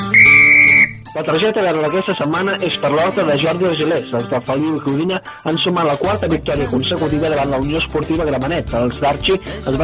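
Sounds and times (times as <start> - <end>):
football referee's whistle blast: 0.2 - 1.1
speech: 1.2 - 9.8.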